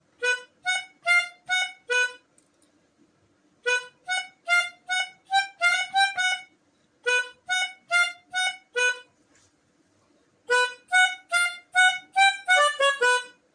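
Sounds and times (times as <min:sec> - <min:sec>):
melodica: 0:00.2 - 0:02.3, 0:03.6 - 0:09.1, 0:10.5 - 0:13.5.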